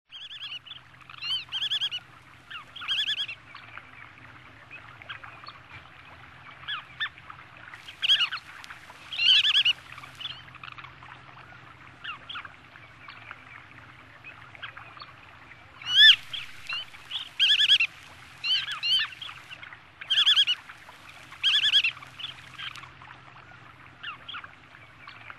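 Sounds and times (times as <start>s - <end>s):
Limosa limosa calling by the sea: 0.1s - 3.3s, 7.9s - 10.4s, 15.8s - 22.8s.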